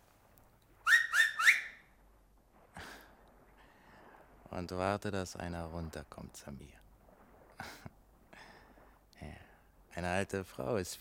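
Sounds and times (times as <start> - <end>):
shrill finger whistles: 0.8 - 1.8
speech: 4.6 - 6.8, 10.0 - 10.9.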